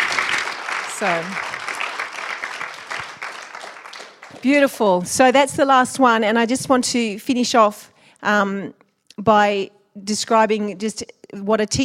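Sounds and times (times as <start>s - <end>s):
audience clapping at a talk: 0.0s - 4.8s
speech: 1.0s - 1.6s, 4.4s - 11.8s.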